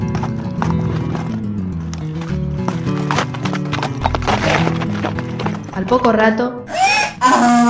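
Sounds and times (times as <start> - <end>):
horse hooves clip-clopping at walking pace: 0.0 - 6.2
continuous musical background: 0.0 - 7.6
speech: 5.9 - 6.7, 7.3 - 7.6
whinny-like sound: 6.7 - 7.6.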